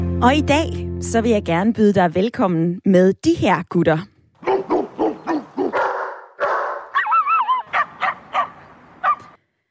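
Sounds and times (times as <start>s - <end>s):
speech: 0.2s - 4.1s
dog barking: 4.4s - 9.4s.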